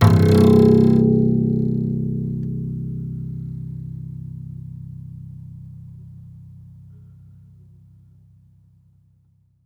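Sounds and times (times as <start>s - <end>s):
classical guitar extended technique plink: 0.0s - 4.5s.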